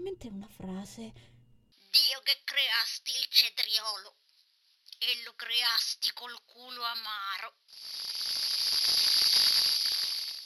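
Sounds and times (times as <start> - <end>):
speech: 0.2 - 1.4, 2.0 - 4.2, 5.0 - 9.1
intense sizzling hiss with faint crackles: 7.7 - 10.4.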